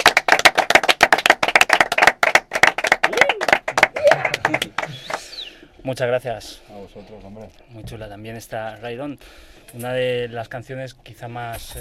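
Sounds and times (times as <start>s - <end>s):
audience applause: 0.0s - 5.3s
speech: 5.9s - 11.7s.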